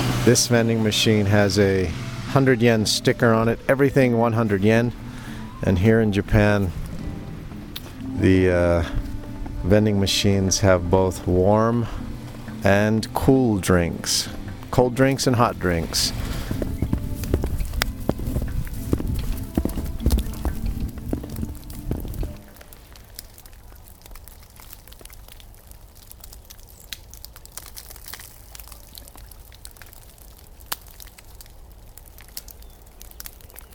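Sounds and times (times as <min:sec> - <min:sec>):
speech: 0:00.2 - 0:05.0, 0:05.6 - 0:06.8, 0:08.2 - 0:12.0, 0:12.6 - 0:16.4
crunching and rustling: 0:15.0 - 0:33.7
wet snow dropping from trees: 0:15.0 - 0:33.7.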